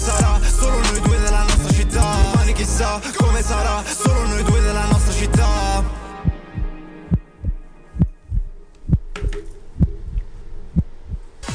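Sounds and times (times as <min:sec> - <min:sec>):
faint musical hum: 0:00.0 - 0:11.4
heartbeat thumping in low paired beats: 0:01.1 - 0:02.6, 0:06.2 - 0:11.4.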